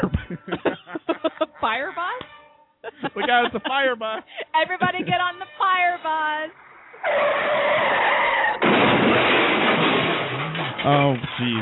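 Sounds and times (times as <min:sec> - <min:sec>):
laughter: 0:00.0 - 0:02.2, 0:02.8 - 0:05.6
speech: 0:01.6 - 0:02.2, 0:03.0 - 0:09.9, 0:10.8 - 0:11.6
screeching skidding whine: 0:05.2 - 0:10.8
loud explosion with roaring crackling noise: 0:06.5 - 0:11.0.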